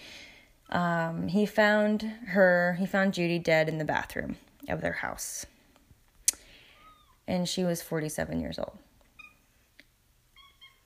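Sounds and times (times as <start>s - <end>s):
soft hum: 0.0s - 10.8s
speech: 0.7s - 5.5s, 7.3s - 8.8s
cat meowing: 10.3s - 10.8s.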